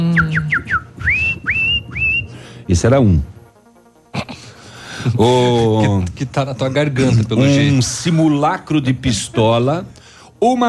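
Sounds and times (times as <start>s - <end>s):
bird-call whistle being blown: 0.0s - 2.4s
speech: 2.7s - 3.4s, 5.0s - 10.6s
laughter: 4.2s - 7.8s.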